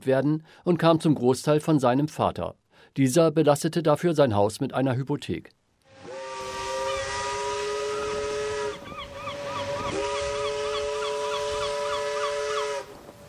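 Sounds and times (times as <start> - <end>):
speech: 0.0 - 5.6
steamship whistle blasting from a steamship sailing from Antwerp via Madeira to Santos: 5.9 - 13.0.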